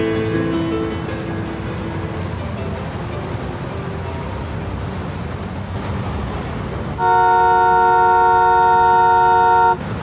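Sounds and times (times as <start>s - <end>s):
low rumble of traffic: 0.0s - 10.0s
long steady car horn blast: 7.0s - 9.8s.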